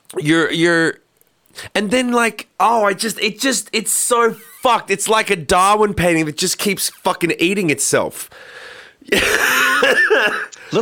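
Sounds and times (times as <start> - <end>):
speech: 0.1 - 10.8
soft intake of breath: 8.3 - 9.0
raspy cough from a sick person: 9.1 - 10.6.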